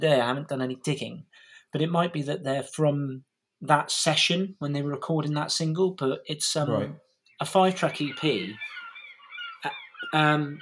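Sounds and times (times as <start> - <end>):
speech: 0.0 - 8.8, 9.6 - 10.6
seagulls crying out in harsh nasal squawks: 7.5 - 10.6.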